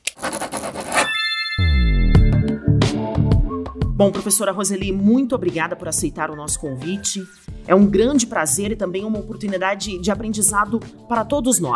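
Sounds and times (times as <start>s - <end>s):
pen scratching on paper: 0.0s - 1.1s
bright ringing chime: 1.0s - 2.8s
warm tonal music: 1.2s - 4.0s
speech: 4.0s - 11.7s.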